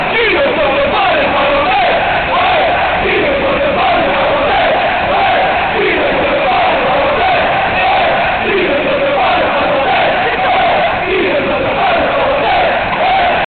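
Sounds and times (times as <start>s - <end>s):
crowd chanting in Nantes: 0.0s - 13.5s.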